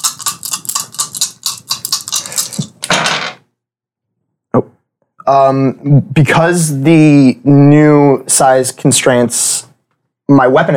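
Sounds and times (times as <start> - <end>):
metal dice rattling in cupped hands: 0.0 - 3.2
speech: 5.3 - 9.7, 10.3 - 10.7.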